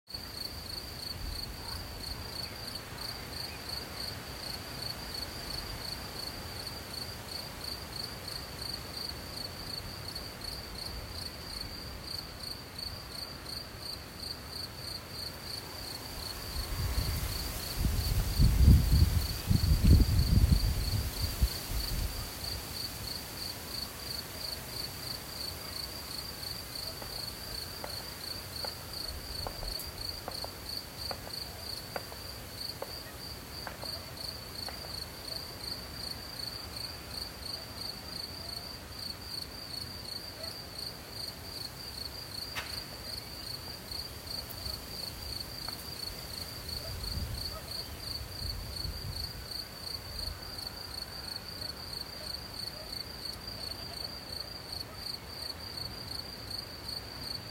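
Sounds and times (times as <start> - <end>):
soft wind in nature: 0.1 - 53.6
cricket chirping: 0.1 - 57.4.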